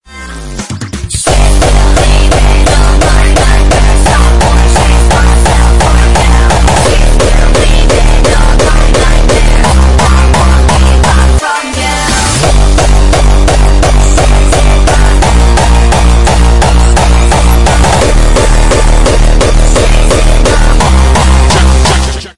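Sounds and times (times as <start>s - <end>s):
gated sad emo hardstyle music: 0.1s - 22.3s.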